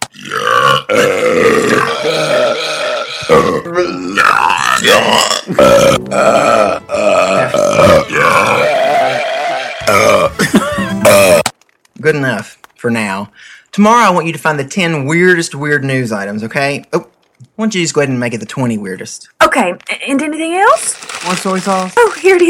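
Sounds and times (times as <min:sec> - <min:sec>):
long loud croaking belches played back from a disc: 0:00.0 - 0:11.5
speech: 0:00.9 - 0:02.7, 0:03.3 - 0:08.6, 0:12.0 - 0:22.4.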